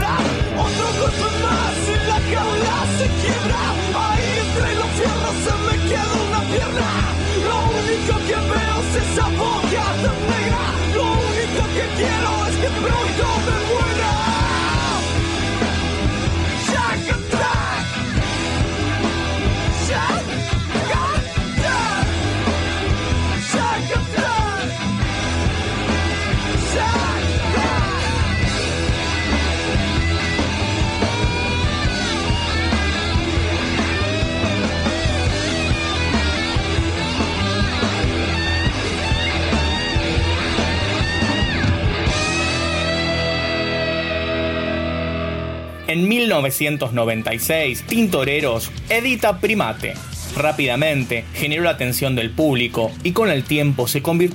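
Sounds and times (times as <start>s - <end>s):
person shouting rap rock vocals: 0.0s - 15.0s, 16.6s - 17.9s, 19.8s - 22.2s, 23.4s - 24.8s, 26.6s - 28.4s
heavy distorted guitars in rap rock track: 0.0s - 54.3s
speech: 46.0s - 54.3s.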